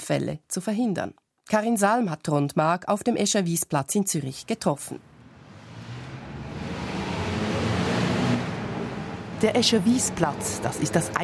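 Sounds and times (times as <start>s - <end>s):
speech: 0.1s - 5.1s, 9.4s - 11.2s
cars rumbling past in city traffic: 5.0s - 11.2s
heavy trucks rumbling past in city traffic: 5.0s - 11.2s
traffic on a bridge above a square: 5.0s - 11.2s.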